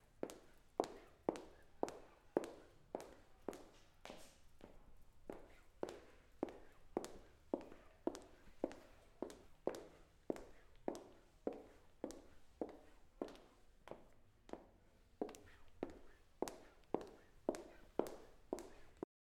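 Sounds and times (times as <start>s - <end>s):
girl walking in high heels: 0.2s - 19.0s.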